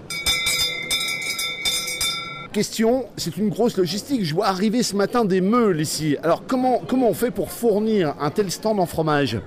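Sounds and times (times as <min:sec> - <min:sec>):
bell ringing: 0:00.0 - 0:02.5
speech: 0:02.6 - 0:09.4.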